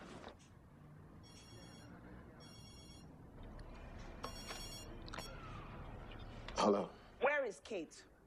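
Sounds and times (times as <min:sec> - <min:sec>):
telephone ringing in trilling bursts: 0:01.2 - 0:03.2, 0:04.2 - 0:05.3
speech: 0:07.5 - 0:08.1.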